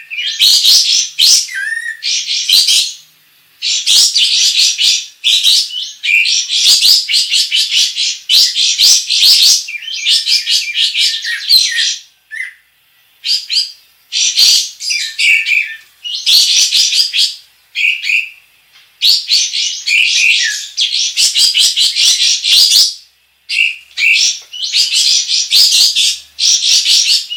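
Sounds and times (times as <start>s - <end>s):
Sooty-headed Bulbul singing with scratchy twittering and chattering: 0.0s - 27.3s.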